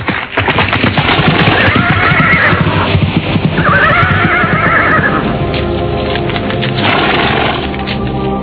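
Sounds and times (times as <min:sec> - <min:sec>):
horse hooves clip-clopping as riders head toward a palace: 0:00.0 - 0:08.3
horse whinnying: 0:01.3 - 0:05.4.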